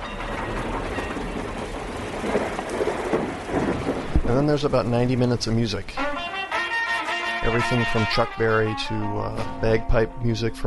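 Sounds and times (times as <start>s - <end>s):
thunder rumbling: 0.0s - 6.3s
speech: 4.3s - 6.2s, 7.4s - 10.6s.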